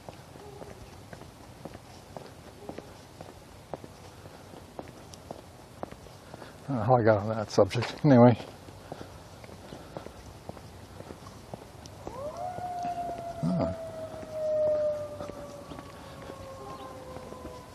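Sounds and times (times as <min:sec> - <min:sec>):
speech: 0:06.7 - 0:08.6
ambulance siren wailing in the neighborhood: 0:12.0 - 0:17.7.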